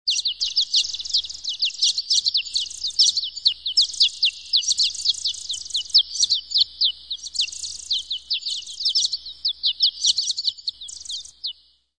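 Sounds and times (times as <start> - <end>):
bird calls with high thin chattering notes sliding downward: 0.1 - 11.3.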